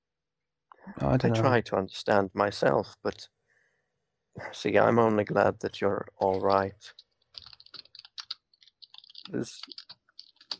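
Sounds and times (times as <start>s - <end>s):
speech: 0.9s - 3.4s, 4.4s - 7.0s, 9.3s - 9.8s
typing on a computer keyboard: 6.2s - 10.5s.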